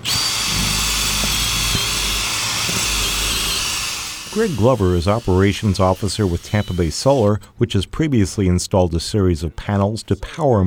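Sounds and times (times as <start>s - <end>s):
power drill boring into a roof: 0.0s - 7.4s
speech: 4.4s - 10.6s.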